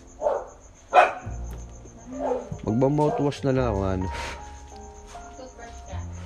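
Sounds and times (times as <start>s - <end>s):
faint steady insect-like whine: 0.0s - 6.2s
dog barking: 0.2s - 1.3s, 2.1s - 3.4s
speech: 2.7s - 4.4s.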